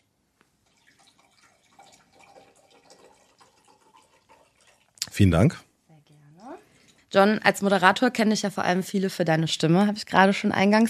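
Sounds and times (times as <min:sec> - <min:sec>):
medium sparkling mineral water pouring into a glass: 0:00.6 - 0:05.6, 0:06.6 - 0:07.4
speech: 0:05.2 - 0:05.7, 0:07.1 - 0:10.8.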